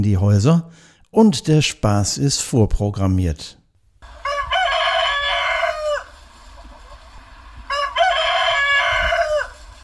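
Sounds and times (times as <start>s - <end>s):
speech: 0.0s - 3.6s
rooster crowing: 4.0s - 6.2s, 7.7s - 9.8s.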